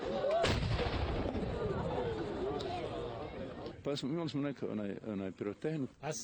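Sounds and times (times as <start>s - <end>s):
outdoor noise: 0.0s - 6.2s
cannon shot marking the iftar time: 0.4s - 2.3s
speech: 3.9s - 6.2s.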